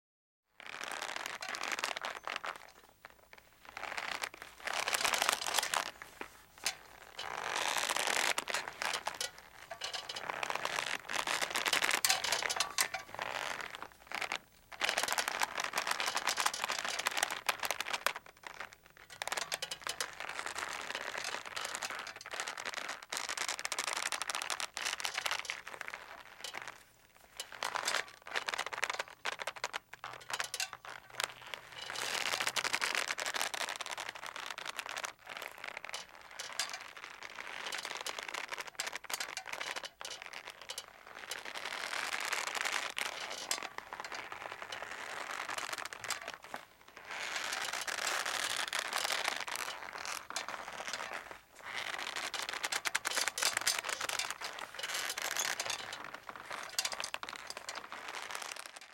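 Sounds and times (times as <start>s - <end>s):
rope stretching and creaking on a slow rocking boat: 0.5s - 58.9s
metal rattling and creaking on a slow rocking boat: 3.8s - 22.6s, 24.7s - 33.0s, 35.8s - 58.4s.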